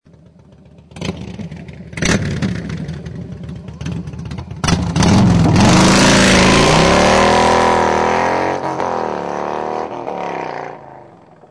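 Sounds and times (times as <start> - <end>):
engine exhaust: 0.0 - 11.4
tyre burnout: 4.6 - 11.4.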